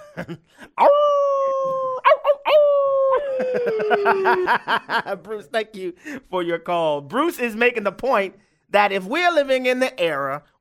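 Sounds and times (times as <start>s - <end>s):
speech: 0.2s - 1.8s, 3.4s - 10.5s
male caller imitating a dog with yips and howls: 0.8s - 4.4s
laughter: 3.0s - 5.3s
breathy sounds: 6.0s - 6.3s, 8.4s - 8.7s.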